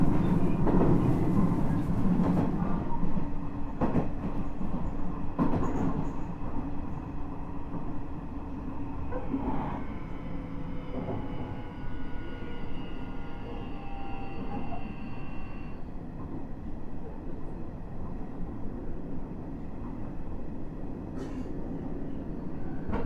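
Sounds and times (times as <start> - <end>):
Nishitetsu 9000 series express train rumble inside the carriage: 0.0 - 23.0
rising whine of the moving train: 9.7 - 15.8.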